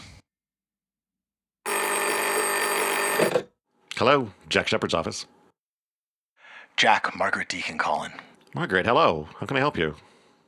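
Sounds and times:
telephone bell ringing with metallic clatter: 1.7 - 3.4
speech: 4.0 - 5.4, 6.8 - 10.1.

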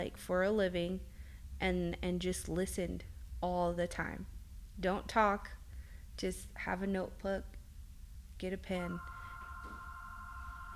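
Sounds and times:
speech: 0.0 - 5.6, 6.2 - 7.6, 8.4 - 9.2
low hum: 0.0 - 10.7
telephone ringing with a steady high electronic tone: 8.9 - 10.7.

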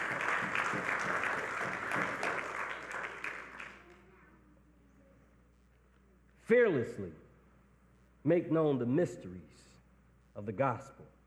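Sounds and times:
audience clapping in praise: 0.0 - 4.0
speech: 6.5 - 7.2, 8.2 - 9.7, 10.4 - 11.2.

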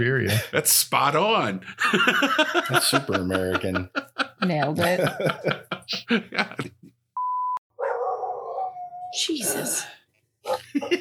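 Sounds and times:
speech: 0.0 - 6.8, 9.2 - 10.9
laughter: 1.6 - 7.0, 10.5 - 10.9
dogs barking and fighting outside: 7.8 - 9.7, 10.4 - 10.9.

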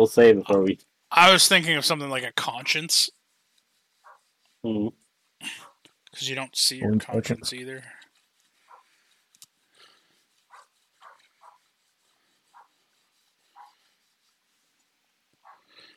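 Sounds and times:
speech: 0.0 - 3.2, 4.6 - 5.6, 6.2 - 8.0
faint dog barking: 8.7 - 8.9, 10.5 - 11.6, 12.5 - 12.7, 13.6 - 13.8, 15.4 - 15.7.

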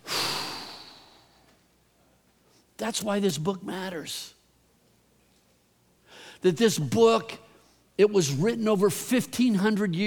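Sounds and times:
person taking a deep breath in and exhaling: 0.0 - 1.6, 6.0 - 6.4
speech: 2.8 - 4.4, 6.4 - 7.4, 8.0 - 10.0.

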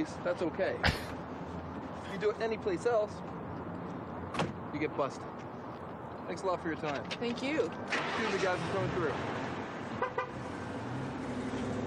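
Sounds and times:
speech: 0.0 - 1.2, 2.1 - 3.4, 4.4 - 5.5, 6.3 - 9.5
traffic and idling engines: 0.0 - 11.8
car horn toots: 10.0 - 10.4.

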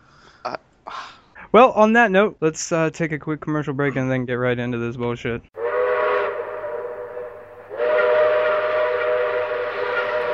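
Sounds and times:
speech: 0.4 - 5.6
steam train whistle: 5.6 - 10.3.

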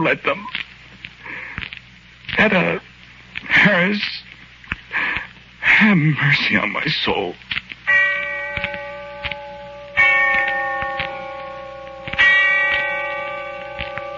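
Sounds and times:
speech: 0.0 - 0.7, 2.4 - 2.9, 3.6 - 4.2, 5.8 - 7.4
distant bell tolling: 7.9 - 14.1.

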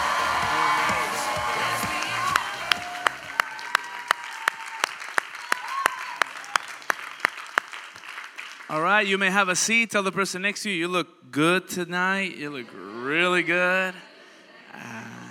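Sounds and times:
steady rhythmic clapping: 0.0 - 8.9
large crowd applauding and cheering: 0.0 - 9.0
speech: 9.0 - 14.1.

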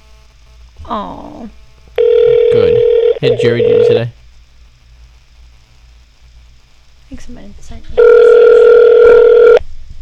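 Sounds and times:
speech: 0.9 - 1.6, 2.5 - 4.2, 7.2 - 8.3
electronic telephone ringing tone while calling: 2.0 - 4.1, 8.0 - 9.6.

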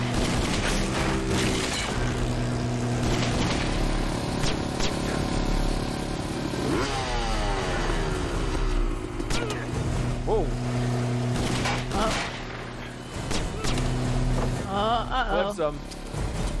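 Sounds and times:
sharp gunfire bursts: 0.0 - 5.3, 11.2 - 14.3
motorcycle engine revving in a movie action scene: 0.0 - 16.5.

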